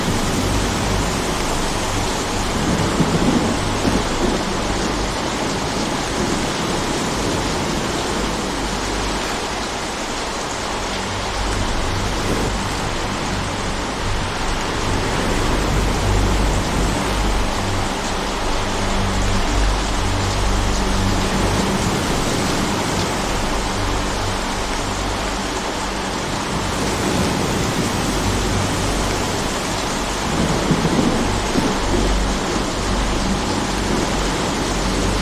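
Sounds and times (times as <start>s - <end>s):
rainstorm: 0.0s - 35.2s.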